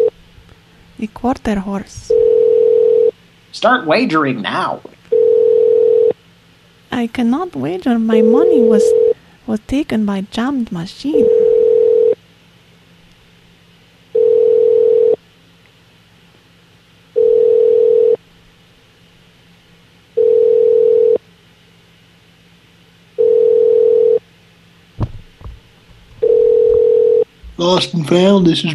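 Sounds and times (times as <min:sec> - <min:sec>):
speech: 0:01.0 - 0:02.2, 0:03.6 - 0:04.9, 0:06.9 - 0:11.3, 0:27.8 - 0:28.7
telephone ringing: 0:02.1 - 0:03.1, 0:05.1 - 0:06.1, 0:08.2 - 0:09.2, 0:11.1 - 0:12.2, 0:14.2 - 0:15.2, 0:17.2 - 0:18.2, 0:20.2 - 0:21.2, 0:23.2 - 0:24.2, 0:26.2 - 0:27.2.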